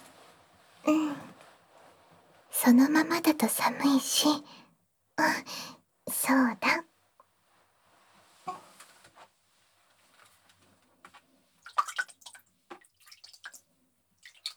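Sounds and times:
speech: 0.8s - 1.4s, 2.6s - 4.6s, 5.2s - 6.8s
warm water dripping and trickling for a foot bath: 11.6s - 14.5s.

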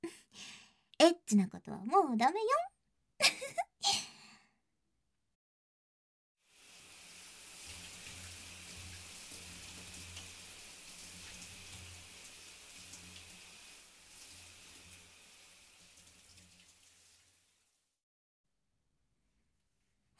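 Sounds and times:
speech: 0.0s - 4.0s
shower spray hitting a surface: 6.5s - 17.7s.

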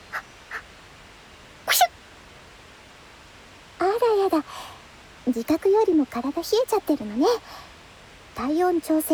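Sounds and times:
person sneezing: 1.7s - 1.9s
speech: 5.3s - 7.7s, 8.4s - 9.1s.

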